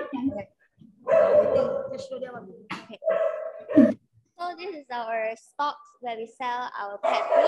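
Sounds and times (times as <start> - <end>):
speech: 0.1 - 7.4
dogs kept for adoption barking and yipping: 1.0 - 2.1, 3.0 - 4.0, 7.0 - 7.4.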